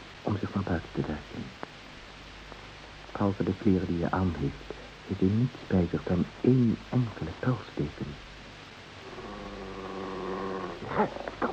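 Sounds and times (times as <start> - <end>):
speech: 3.2 - 8.3, 11.0 - 11.3
dog growling: 9.0 - 11.5.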